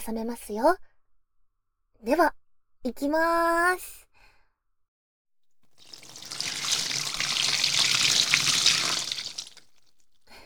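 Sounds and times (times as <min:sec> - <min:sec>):
speech: 0:00.0 - 0:00.9, 0:02.0 - 0:04.0
tap water running while hair is washed: 0:05.7 - 0:09.8.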